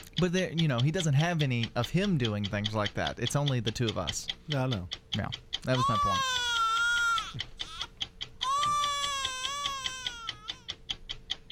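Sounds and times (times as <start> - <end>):
clock ticking: 0.0 - 11.5
speech: 0.2 - 6.4
baby crying: 5.7 - 10.7.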